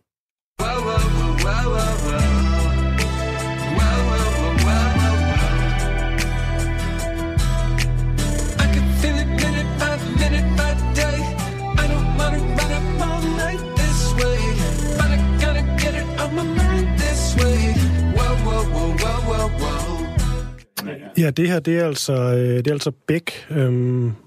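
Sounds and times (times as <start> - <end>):
loud hip-hop track with heavy punchy bass and Scotch snap rhythm: 0.6 - 22.2
speech: 20.9 - 24.2.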